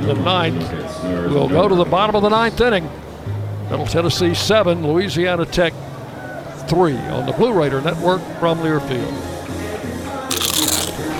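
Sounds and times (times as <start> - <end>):
speech: 0.0 - 5.9, 6.7 - 9.4
crunch of biting a nacho chip topped with cheese, sour cream and beans: 10.3 - 11.1.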